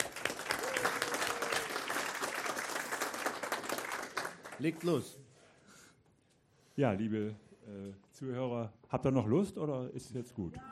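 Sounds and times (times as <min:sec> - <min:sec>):
audience applause with many hands clapping: 0:00.0 - 0:05.0
speech: 0:04.6 - 0:05.2, 0:06.8 - 0:10.7.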